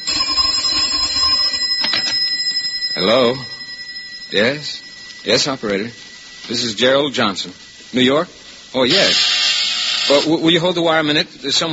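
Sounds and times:
telephone ringing with a bright metallic bell trill: 0:00.0 - 0:07.2
speech: 0:03.0 - 0:03.5, 0:04.3 - 0:09.4, 0:10.1 - 0:11.7.

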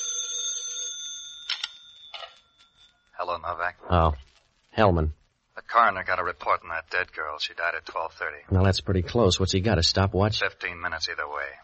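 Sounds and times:
telephone bell ringing: 0:00.0 - 0:03.1
speech: 0:03.2 - 0:11.6.

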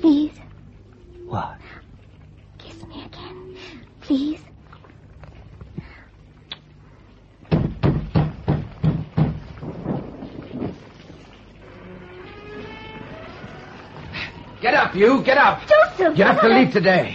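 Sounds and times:
speech: 0:01.3 - 0:01.6, 0:04.1 - 0:04.5, 0:14.9 - 0:17.1
loud rhythmic thumps: 0:07.4 - 0:11.6
heavy rain: 0:09.4 - 0:17.1.

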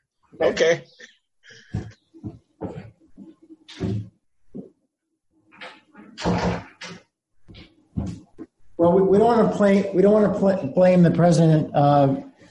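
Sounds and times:
speech: 0:00.4 - 0:02.4, 0:08.9 - 0:12.3
door being closed with knocks clunks and scraping: 0:05.6 - 0:07.1.

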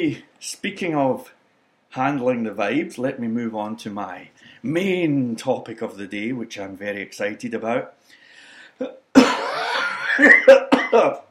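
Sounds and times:
speech: 0:00.0 - 0:08.2, 0:08.8 - 0:09.0, 0:10.2 - 0:11.2
strained wheezy drawn breath: 0:08.0 - 0:08.8
coughing fit of harsh hacking coughs: 0:08.8 - 0:11.2.

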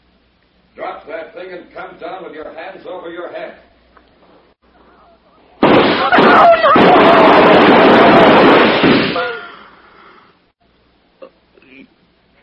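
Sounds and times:
speech: 0:01.0 - 0:03.7
gunshots in an armed standoff: 0:05.6 - 0:09.4.

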